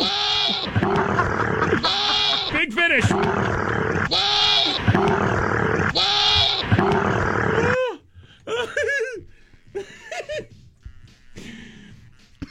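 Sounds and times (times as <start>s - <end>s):
person imitating wavering goat bleats: 0.0s - 2.7s, 3.4s - 7.8s, 10.5s - 12.4s
person imitating a camel roaring at a goat: 0.0s - 8.0s
laughter: 0.6s - 4.1s, 7.5s - 10.7s, 12.3s - 12.4s.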